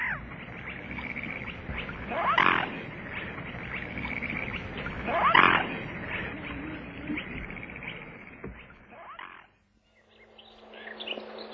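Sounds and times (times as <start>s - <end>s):
outdoor wash of water and wind: 0.0s - 9.0s
swan honking calls from a swan swimming on a lake: 0.0s - 9.5s.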